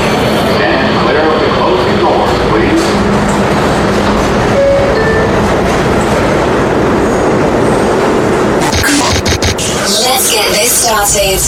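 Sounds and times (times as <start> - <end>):
subway train rumbling and rattling on rails: 0.0 - 11.4
indistinct voice murmuring: 8.6 - 10.0.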